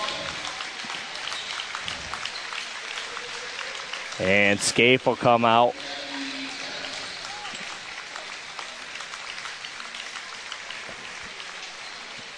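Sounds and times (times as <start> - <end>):
faint murmurs: 0.0 - 8.9
crowd applause in an indoor gym: 0.0 - 12.3
speech: 4.2 - 6.0.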